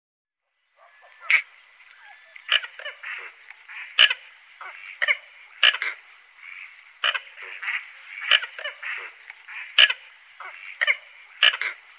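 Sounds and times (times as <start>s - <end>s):
red-knobbed coot harsh clipped calls: 0.8s - 11.8s.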